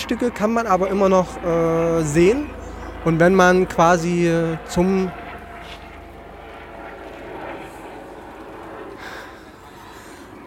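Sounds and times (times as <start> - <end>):
helicopter flying overhead: 0.0 - 10.4
speech: 0.1 - 5.2
faint breathy sounds: 9.0 - 10.4.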